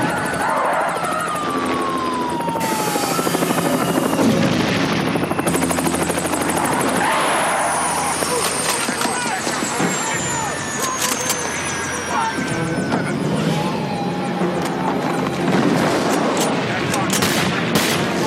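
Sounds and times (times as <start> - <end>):
indistinct voices: 0.0 - 4.3, 6.0 - 18.2
helicopter rotor thumping: 0.0 - 18.2.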